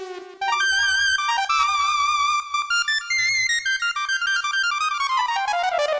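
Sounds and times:
synth lead on a Roland PN-D50: 0.5s - 5.8s.

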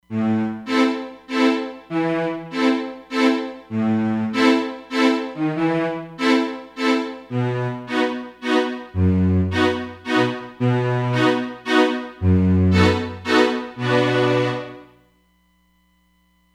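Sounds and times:
strings: 0.1s - 15.0s.

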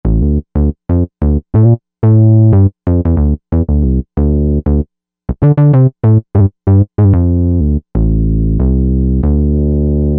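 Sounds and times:
creamy bass: 0.0s - 10.1s.

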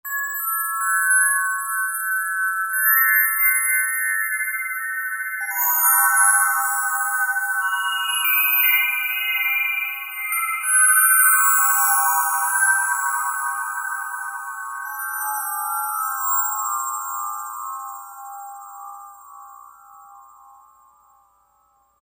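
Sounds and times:
synthesized bell tree: 0.1s - 21.7s.

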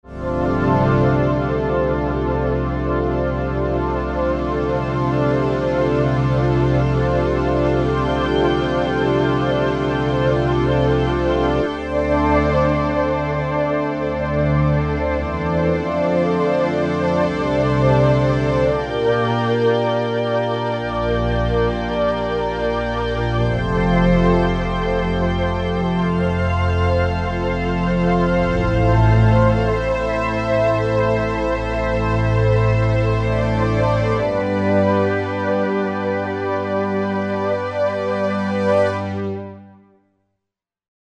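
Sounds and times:
cloudy synth pad on Korg MSC-12S synthesizer: 0.1s - 39.5s.

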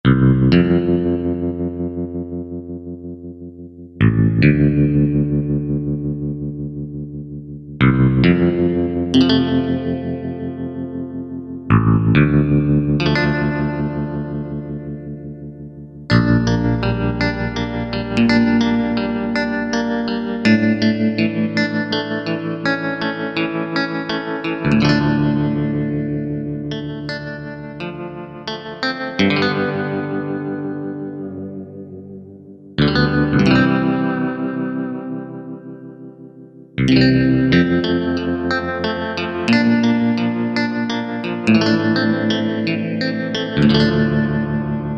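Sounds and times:
guitar internal voice of Yamaha TG500: 0.0s - 44.9s.

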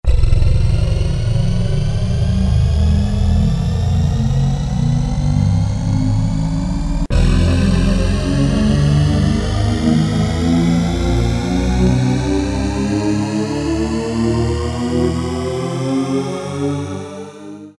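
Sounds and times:
Korg DSS-1 synthesizer brass patch: 0.0s - 17.7s.

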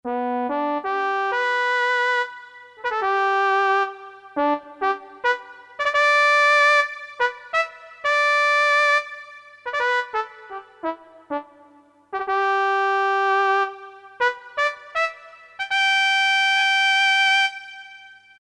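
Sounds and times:
Korg DSS-1 synthesizer trumpet brass sound: 0.1s - 11.6s, 12.2s - 18.3s.

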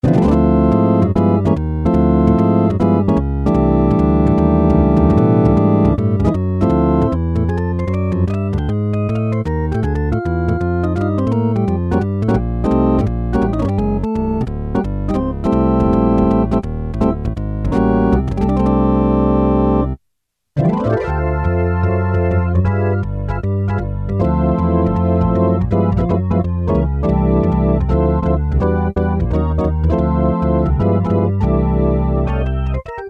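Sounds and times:
jazz organ on Technics SX-K450 poly presets: 0.0s - 20.0s, 20.6s - 33.0s.

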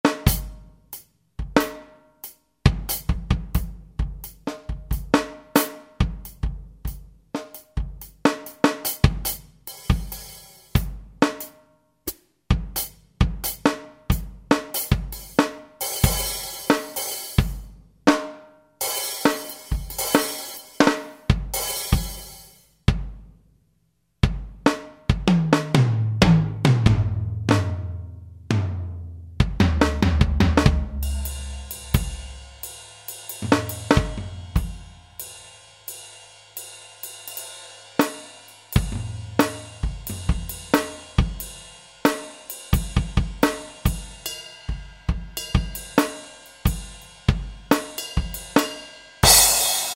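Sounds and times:
real studio drum kit: 0.0s - 23.3s, 24.2s - 49.9s.

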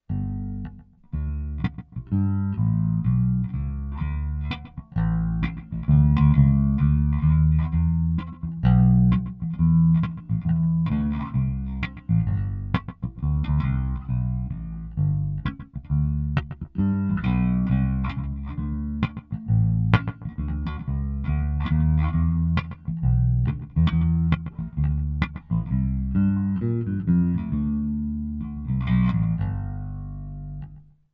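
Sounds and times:
bass guitar through a bass effects factory preset: 0.0s - 31.0s.

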